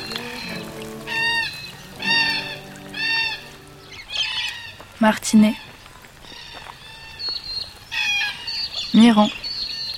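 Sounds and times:
birds calling in loud harmonic honking bursts: 0.0s - 4.8s
speech: 5.0s - 5.6s, 9.0s - 9.4s.

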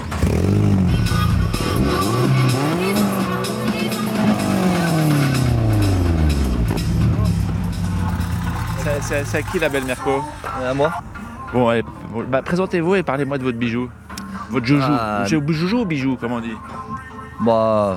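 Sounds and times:
car engine roaring and revving: 0.0s - 10.1s
speech: 9.1s - 16.8s, 17.4s - 17.9s.

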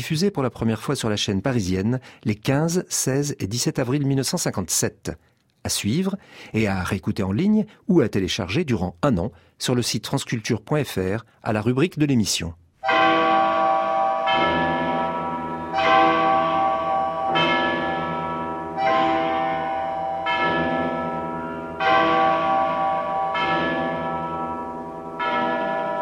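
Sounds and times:
speech: 0.0s - 13.0s
deep cathedral bell tolling: 12.8s - 26.0s.

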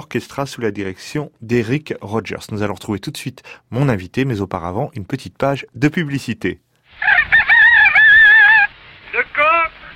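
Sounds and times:
speech: 0.1s - 7.1s
rooster crowing: 7.0s - 8.8s.

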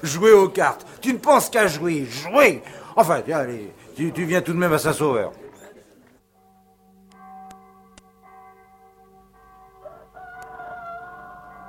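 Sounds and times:
speech: 0.0s - 5.4s
rooster crowing: 9.8s - 11.6s.

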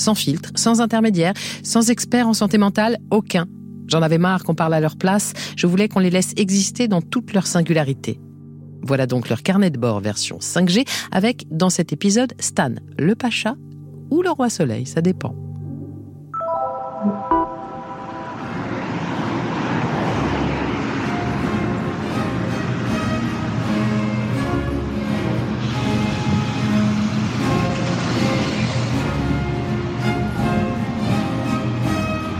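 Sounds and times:
speech: 0.0s - 15.4s, 17.0s - 17.4s
street traffic at a bus stop: 17.4s - 32.3s
loud rumbling engine hum: 18.0s - 32.3s.

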